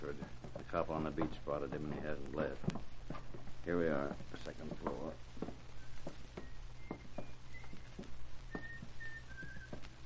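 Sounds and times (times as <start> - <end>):
speech: 0.0 - 2.9, 3.6 - 5.6
footsteps or light taps: 0.0 - 10.0
man whistling a muffled tune behind a closed door: 5.8 - 10.0.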